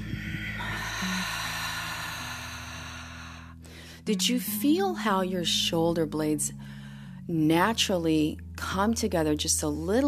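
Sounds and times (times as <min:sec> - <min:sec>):
breathy exhale during a yoga breathing exercise: 0:00.0 - 0:04.0
speech: 0:04.1 - 0:10.0.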